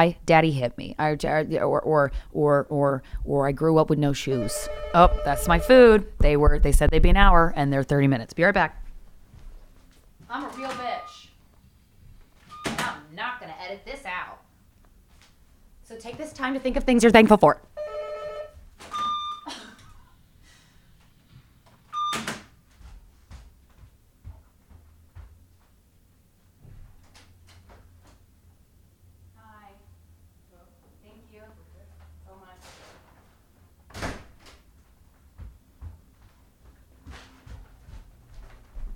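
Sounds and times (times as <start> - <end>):
speech: 0.0 - 8.8, 10.3 - 11.1, 15.9 - 17.7
door opening and closing: 12.4 - 13.0, 18.8 - 20.0, 21.9 - 22.6, 33.9 - 34.6
short electronic beeps: 12.5 - 12.8, 18.9 - 19.5, 21.9 - 22.2.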